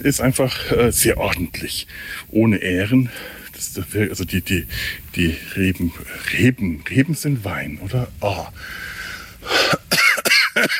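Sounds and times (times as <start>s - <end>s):
speech: 0.0s - 10.7s
harsh coughs from a person with a cold: 9.5s - 10.7s.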